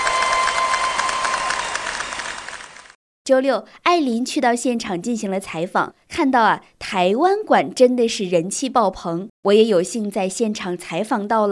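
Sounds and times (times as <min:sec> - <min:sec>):
applause from a sizable crowd: 0:00.0 - 0:03.0
speech: 0:03.3 - 0:11.4.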